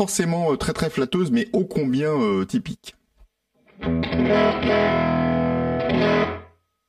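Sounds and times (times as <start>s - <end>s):
speech: 0.0s - 3.0s, 3.8s - 5.2s, 5.9s - 6.3s
crunchy tweed-style overdriven electric guitar chords on the middle pickup: 3.6s - 6.6s.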